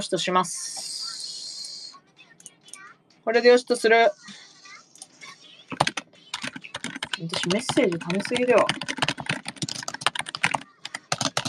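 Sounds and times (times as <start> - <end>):
speech: 0.0 - 1.0, 3.2 - 4.4, 7.2 - 9.0
rapid typing on a computer keyboard: 5.7 - 11.4.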